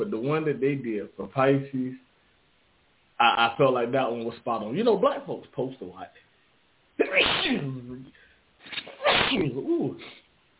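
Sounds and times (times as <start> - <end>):
speech: 0.1 - 2.1, 3.2 - 6.2, 7.0 - 10.2
person sneezing with wheezy tail: 7.0 - 8.0, 8.6 - 10.3.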